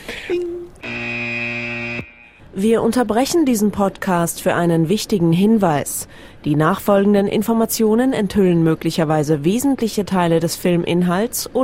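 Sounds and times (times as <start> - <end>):
short tone: 0.4 - 2.4
spoiler alert alarm sound effect, buzzy electronic tone: 0.8 - 2.4
speech: 2.6 - 11.6.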